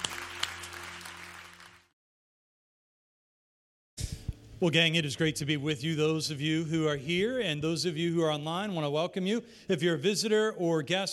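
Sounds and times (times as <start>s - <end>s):
roomful of people clapping: 0.0s - 2.0s
speech: 4.6s - 11.1s.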